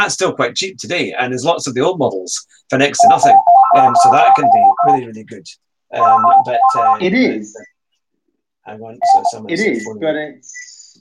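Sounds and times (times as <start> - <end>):
speech: 0.0 - 7.7, 8.7 - 10.6
mobile phone ringing with a bright tonal ringtone: 3.0 - 5.0, 6.0 - 7.0, 9.0 - 9.5.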